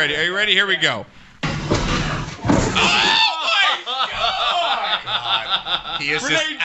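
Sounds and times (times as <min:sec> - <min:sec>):
speech: 0:00.0 - 0:01.2, 0:05.1 - 0:06.6
head slamming into the floor: 0:01.4 - 0:03.2
laughter: 0:02.7 - 0:06.6
people shouting excitedly: 0:02.8 - 0:04.9.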